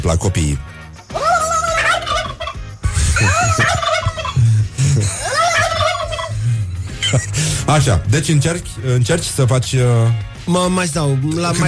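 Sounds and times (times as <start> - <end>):
speech: 0.0 - 0.7, 3.2 - 3.9, 7.1 - 11.6
turkey gobbling: 1.2 - 2.6, 3.2 - 4.5, 5.1 - 6.4
laughter: 2.9 - 7.9.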